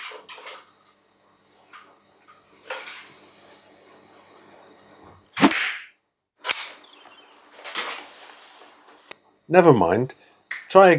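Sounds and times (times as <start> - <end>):
arrow being shot: 5.4 - 5.9
speech: 9.5 - 10.9.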